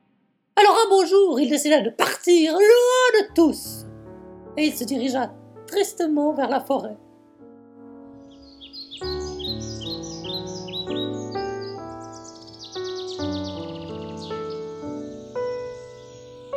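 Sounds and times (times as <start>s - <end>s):
gentle sustained musical accompaniment: 0.6s - 16.5s
speech: 0.9s - 3.9s, 4.6s - 7.0s
small birds chirping: 8.1s - 16.5s.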